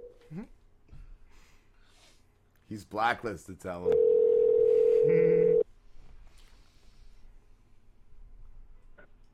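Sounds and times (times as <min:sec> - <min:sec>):
speech: 0:02.7 - 0:04.1, 0:05.0 - 0:05.6
electronic phone ringback tone heard while calling someone: 0:03.9 - 0:05.6.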